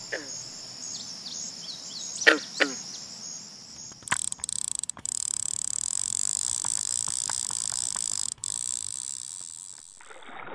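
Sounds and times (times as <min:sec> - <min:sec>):
insects chirring: 0:00.0 - 0:10.2
clicks: 0:03.9 - 0:10.2
green frog calling: 0:04.0 - 0:10.1.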